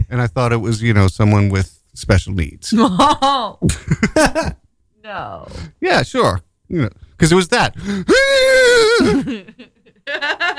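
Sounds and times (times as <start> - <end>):
speech: 0.1 - 10.5
person imitating a horse whinny: 8.1 - 9.2.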